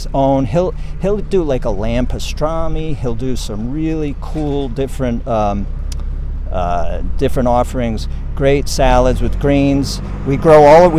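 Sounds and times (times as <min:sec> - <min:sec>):
speech: 0:00.0 - 0:05.8, 0:06.5 - 0:10.9
tractor hauling grapes engine rumbling: 0:00.0 - 0:10.9.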